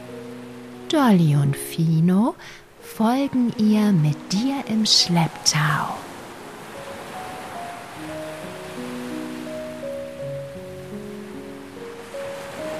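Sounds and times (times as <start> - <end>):
ocean surf washing: 0.0 - 12.7
soft sustained musical tones: 0.0 - 12.7
speech: 0.9 - 6.1.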